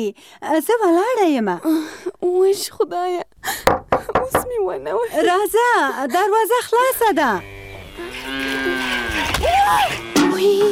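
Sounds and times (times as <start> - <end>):
speech: 0.0 - 8.3, 9.7 - 10.6
cow mooing: 7.3 - 10.1.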